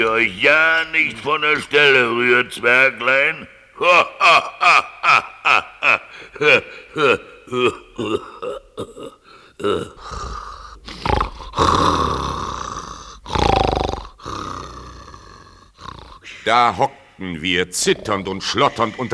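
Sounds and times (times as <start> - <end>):
speech: 0.0 - 10.4, 16.4 - 19.1
laughter: 0.0 - 11.3, 16.2 - 19.1
voice imitating loud booming snoring: 7.5 - 19.1.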